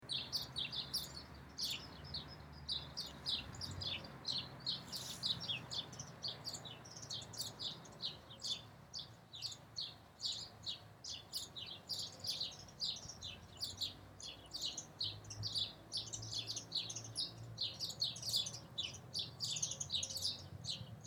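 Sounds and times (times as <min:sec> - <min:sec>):
one or two sparrows chirping: 0:00.0 - 0:21.0.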